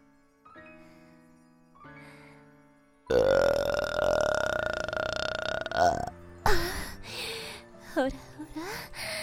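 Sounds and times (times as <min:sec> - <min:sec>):
person burping: 0:03.1 - 0:06.2.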